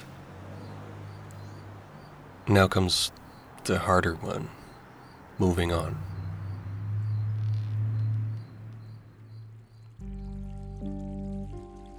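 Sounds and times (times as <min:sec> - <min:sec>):
stream water rushing: 0:00.0 - 0:09.0
speech: 0:02.5 - 0:04.6, 0:05.4 - 0:06.1.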